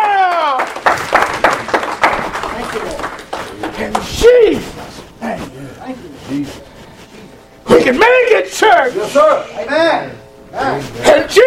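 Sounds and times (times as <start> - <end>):
audience clapping hands in praise: 0.0 - 4.5
speech: 7.9 - 11.4.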